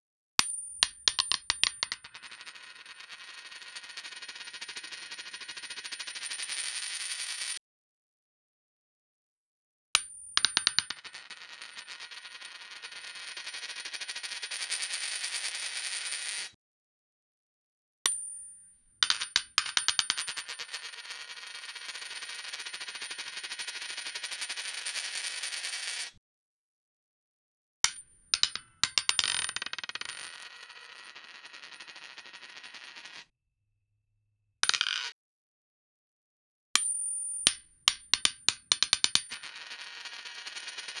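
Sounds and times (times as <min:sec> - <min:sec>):
coin sound effect: 0:00.4 - 0:07.6, 0:10.0 - 0:16.5, 0:19.0 - 0:26.2, 0:27.9 - 0:33.2, 0:34.6 - 0:35.1, 0:38.4 - 0:40.9.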